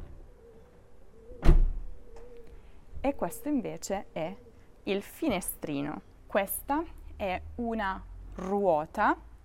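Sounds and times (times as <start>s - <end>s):
heavy car door closing: 1.4s - 1.8s
speech: 3.0s - 9.3s.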